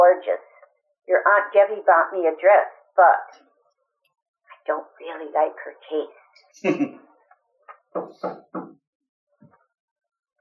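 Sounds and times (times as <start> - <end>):
speech: 1.1 - 3.5, 4.7 - 7.1, 7.9 - 8.7
firm knocking on a door: 7.9 - 8.8.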